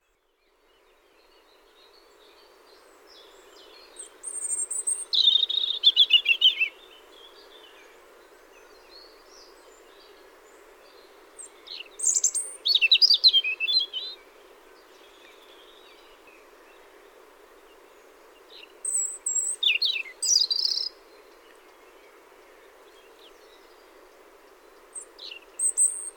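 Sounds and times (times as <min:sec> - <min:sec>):
European robin singing: 0:03.7 - 0:07.0, 0:10.9 - 0:16.8, 0:18.4 - 0:21.0, 0:22.9 - 0:26.1.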